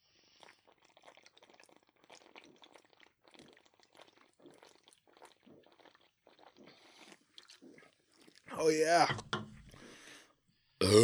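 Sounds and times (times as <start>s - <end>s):
loud voiced grunt: 8.5s - 9.2s, 10.8s - 11.0s
speech: 8.6s - 9.2s
drawn-out rumbling burp: 10.8s - 11.0s.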